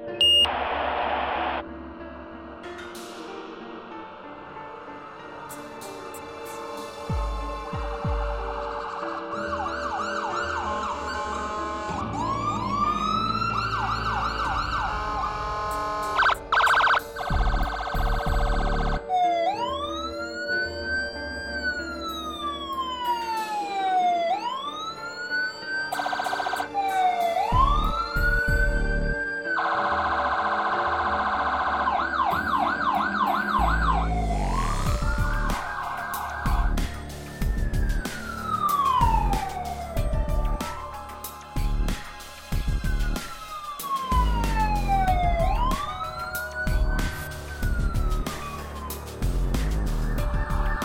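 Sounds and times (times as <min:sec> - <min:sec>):
traditional siren: 0:00.2 - 0:01.8, 0:05.4 - 0:50.8.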